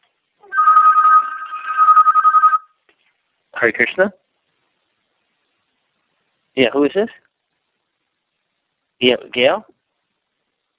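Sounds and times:
telephone ringing with an electronic trill: 0.4 - 2.8
speech: 3.6 - 4.2, 6.6 - 7.3, 9.0 - 9.7.

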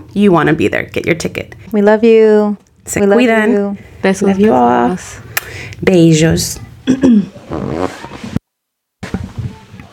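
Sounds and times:
speech: 0.1 - 8.2
buzzy throat noise sounding like a fart: 6.9 - 8.2.

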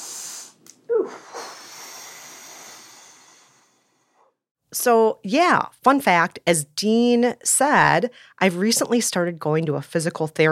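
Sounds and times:
person gasping: 0.0 - 4.3
person taking a deep breath: 0.0 - 4.4
speech: 4.8 - 10.5.

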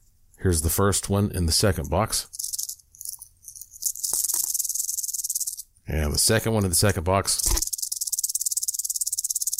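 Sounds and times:
speech: 0.4 - 2.4, 5.9 - 7.7
detached rattlesnake tail rattle being shaken: 1.8 - 5.7, 7.3 - 9.5.

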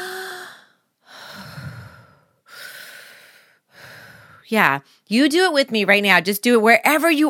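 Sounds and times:
deep slow breathing from one person: 0.0 - 4.5
speech: 4.5 - 7.2.

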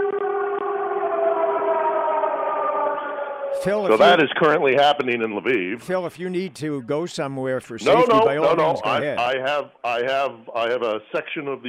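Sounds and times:
air raid siren wailing: 0.0 - 4.5
speech: 3.6 - 11.6.

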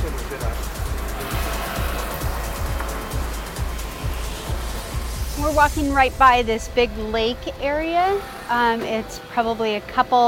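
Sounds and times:
small motor scooter engine idling and puttering: 0.0 - 6.2
speech: 5.5 - 10.2.

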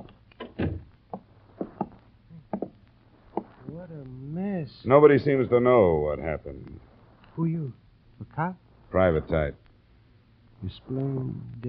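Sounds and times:
footsteps in a quiet room: 0.0 - 3.8
door thudding shut: 0.4 - 0.9
speech: 4.8 - 9.6, 10.6 - 11.6.

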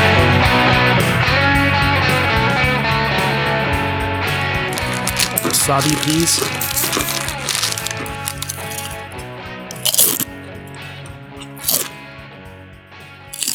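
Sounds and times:
music: 0.0 - 13.5
person crunching on a crisp snack: 4.7 - 10.3, 11.4 - 11.9, 13.3 - 13.5
speech: 5.7 - 7.2.

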